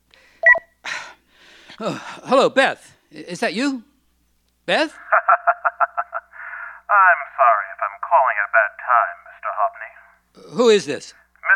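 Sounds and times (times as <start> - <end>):
cordless phone keypad tones when answering a call: 0.4 - 0.6
speech: 1.7 - 3.9, 4.7 - 5.4, 6.9 - 9.2, 10.5 - 11.2
laughter: 5.0 - 6.7.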